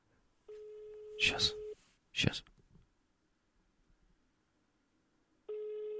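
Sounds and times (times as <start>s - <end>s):
telephone ringback tone while dialing: 0.5s - 1.8s, 5.5s - 5.9s
speech: 1.2s - 1.6s, 2.2s - 2.5s.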